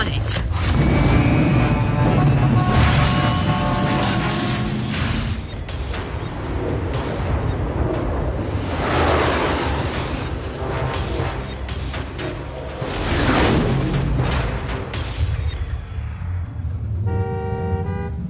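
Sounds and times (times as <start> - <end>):
road traffic with cars driving toward the listener: 0.8 - 18.2
horn-like tone: 1.0 - 4.9, 17.0 - 18.2.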